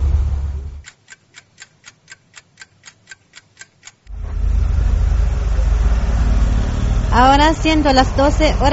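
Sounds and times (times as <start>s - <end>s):
idling car engines in a traffic jam: 0.0s - 0.8s, 4.1s - 8.7s
car indicator ticking: 0.8s - 4.2s
speech: 7.2s - 8.7s.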